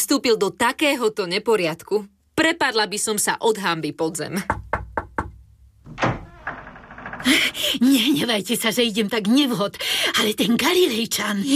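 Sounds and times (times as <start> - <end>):
speech: 0.1 - 4.6, 7.2 - 11.5
quick sharp knocks on a door: 4.5 - 7.6
lingering scraping rumble: 5.9 - 7.8.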